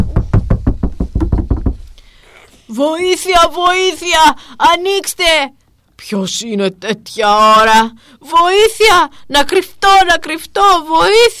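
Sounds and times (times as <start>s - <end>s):
loud knocking on a door: 0.0s - 1.9s
speech: 2.8s - 11.3s.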